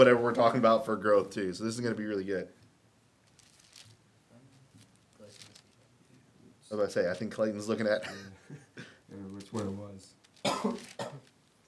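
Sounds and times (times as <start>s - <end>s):
speech: 0.0s - 2.6s, 6.7s - 11.2s
coughs: 8.0s - 9.0s, 10.4s - 11.3s.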